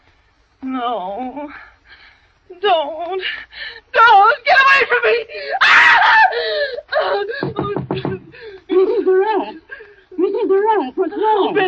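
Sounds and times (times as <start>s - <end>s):
speech: 0.8s - 1.7s, 2.5s - 8.1s, 10.4s - 11.6s
woman screaming in a nightmare: 4.0s - 7.8s.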